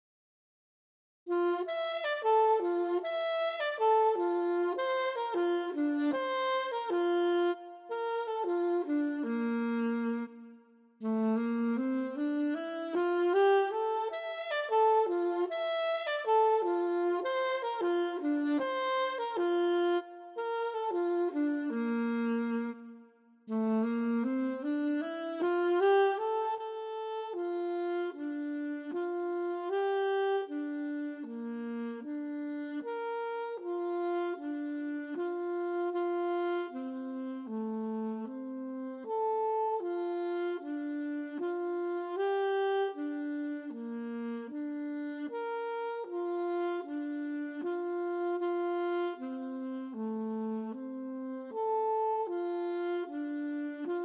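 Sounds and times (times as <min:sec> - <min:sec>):
alto saxophone: 0:01.3 - 0:54.0.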